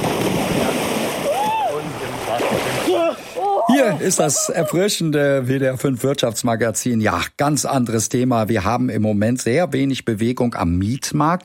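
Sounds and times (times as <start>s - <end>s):
person pushed into water splashing: 0.0s - 3.4s
water churning and sloshing: 0.0s - 4.4s
person crying out: 2.9s - 4.8s
speech: 3.8s - 11.4s.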